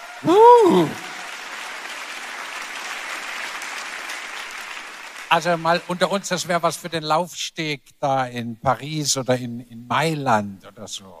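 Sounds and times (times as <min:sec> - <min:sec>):
audience applause: 0:00.0 - 0:07.0
speech: 0:00.2 - 0:01.1, 0:05.3 - 0:11.1.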